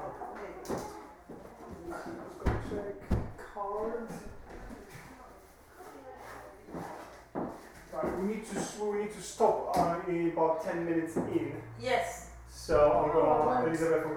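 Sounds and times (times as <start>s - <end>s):
door bumping and clattering as it fails to close: 2.4s - 3.5s
speech: 8.4s - 12.1s, 12.7s - 14.1s.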